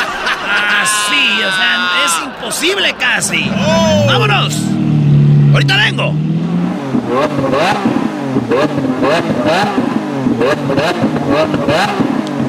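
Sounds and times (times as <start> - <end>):
laughter: 0.0 - 4.7
speech: 2.5 - 12.1
sports car combustion engine revving: 3.2 - 12.4.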